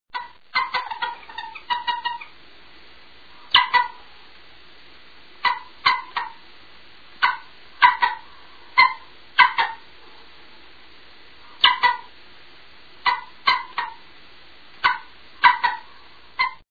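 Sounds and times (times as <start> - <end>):
golden eagle calling: 0.2 - 2.4, 3.3 - 4.2, 5.4 - 6.4, 7.2 - 9.9, 11.4 - 12.2, 13.0 - 14.1, 14.8 - 16.6.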